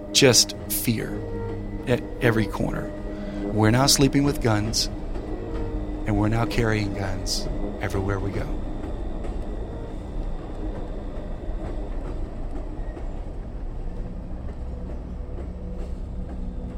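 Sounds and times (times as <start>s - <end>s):
thin high squeal of a freight train: 0.0s - 13.2s
freight train rumbling along the rails: 0.0s - 16.7s
speech: 0.1s - 1.3s, 1.9s - 5.0s, 6.1s - 8.6s.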